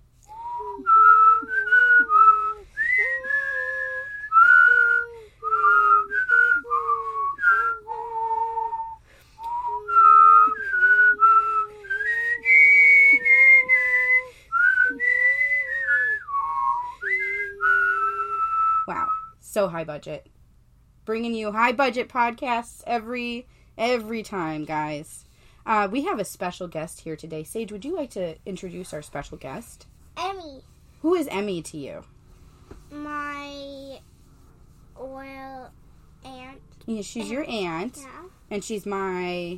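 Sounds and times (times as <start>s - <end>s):
several people whistling a film soundtrack theme in unison: 0.3s - 19.3s
speech: 19.6s - 20.3s, 21.1s - 29.9s, 31.0s - 32.1s, 36.9s - 39.5s.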